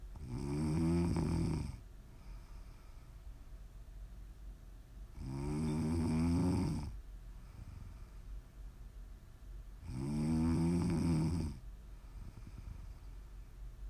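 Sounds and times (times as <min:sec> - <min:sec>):
quiet breathing: 0:00.0 - 0:03.7, 0:05.1 - 0:08.9, 0:09.8 - 0:13.8
loud low rasping snores: 0:00.2 - 0:01.8, 0:05.2 - 0:07.0, 0:09.8 - 0:11.6.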